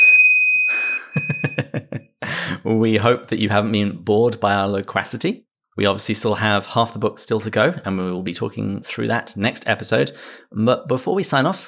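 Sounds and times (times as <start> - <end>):
last call bell ringing: 0.0 - 1.8
speech: 1.4 - 1.9, 2.6 - 11.6.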